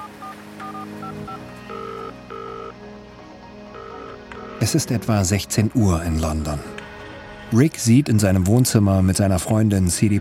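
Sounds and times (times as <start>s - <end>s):
telephone keypad dialing tones: 0.0s - 2.7s, 3.8s - 4.6s
speech: 4.6s - 6.8s, 7.5s - 10.1s.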